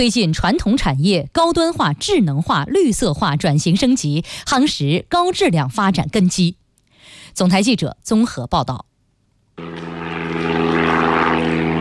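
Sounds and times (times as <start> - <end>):
speech: 0.0 - 8.9
large propeller cargo transport drone flying in Henan: 9.6 - 11.7.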